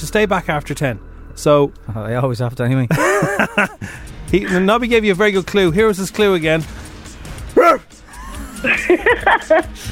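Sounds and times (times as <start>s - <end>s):
speech: 0.1s - 6.8s, 8.6s - 9.8s
laughter: 2.9s - 3.9s, 8.1s - 9.8s
person imitating a dog barking: 7.6s - 7.8s.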